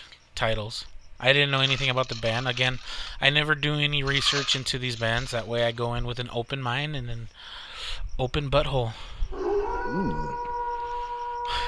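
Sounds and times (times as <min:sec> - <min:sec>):
steady sustained hum of tones: 0:00.0 - 0:11.6
speech: 0:00.4 - 0:09.2, 0:09.9 - 0:10.3
person imitating a wolf howl: 0:09.3 - 0:11.6.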